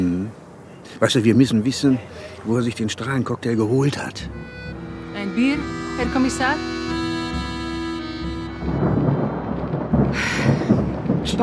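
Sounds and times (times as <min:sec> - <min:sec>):
rain and storm: 0:00.0 - 0:11.4
speech: 0:01.0 - 0:04.6, 0:05.3 - 0:06.9
held tonal passage: 0:03.8 - 0:09.4.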